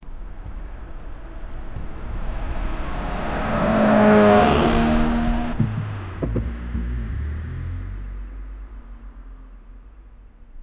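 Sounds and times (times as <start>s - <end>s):
car driving over speed bump: 0.4s - 7.8s.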